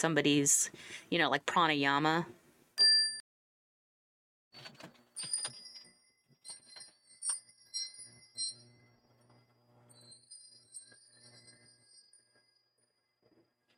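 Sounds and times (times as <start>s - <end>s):
speech: 0.0s - 2.4s
high bright meditation chime ringing: 5.2s - 13.2s.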